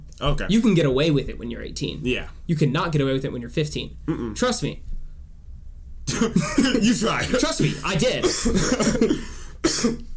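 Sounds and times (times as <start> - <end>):
speech: 0.2 - 4.9, 6.1 - 10.1
person coughing: 6.1 - 10.1.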